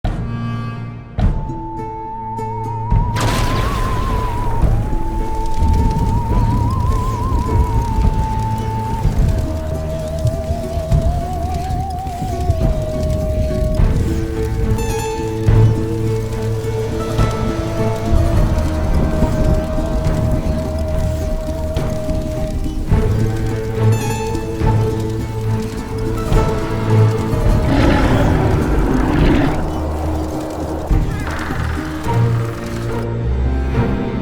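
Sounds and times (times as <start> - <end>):
Halloween background music: 0.0 - 34.1
Halloween sound effects: 3.2 - 33.2.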